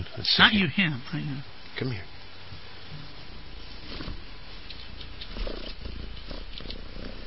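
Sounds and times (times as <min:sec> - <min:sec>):
speech: 0:00.2 - 0:02.1
cat purring: 0:02.1 - 0:07.2
light rustling movements: 0:02.4 - 0:07.2.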